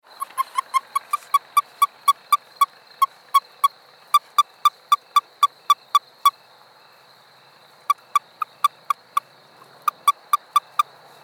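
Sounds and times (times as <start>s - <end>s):
Anaxyrus nelsoni toad: 0.0s - 6.5s, 7.8s - 11.2s.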